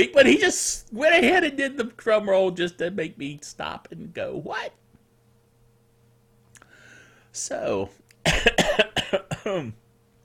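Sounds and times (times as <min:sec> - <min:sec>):
speech: 0:00.0 - 0:04.8, 0:07.4 - 0:09.8
person with a rough throat coughing: 0:08.2 - 0:09.8.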